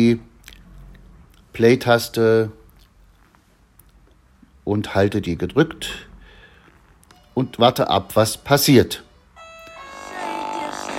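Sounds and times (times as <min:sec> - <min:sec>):
speech: 0:00.0 - 0:00.3, 0:01.6 - 0:02.6, 0:04.7 - 0:06.1, 0:07.4 - 0:09.1
doorbell ringing with a bright sustained chime: 0:09.1 - 0:10.9.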